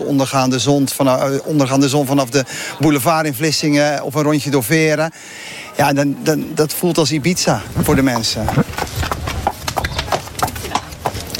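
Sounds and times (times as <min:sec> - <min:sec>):
speech: 0:00.1 - 0:08.9
horse hooves clopping on a hard surface: 0:06.3 - 0:11.3.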